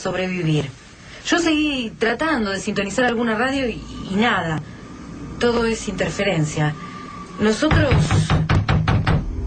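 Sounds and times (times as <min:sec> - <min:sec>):
speech: 0:00.0 - 0:04.7, 0:05.4 - 0:08.2
heavy knocking on a door: 0:07.7 - 0:09.3.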